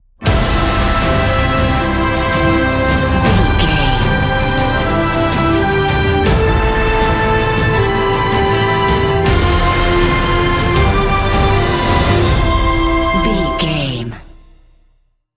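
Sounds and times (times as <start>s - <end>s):
cinematic corporate music: 0.2s - 14.8s.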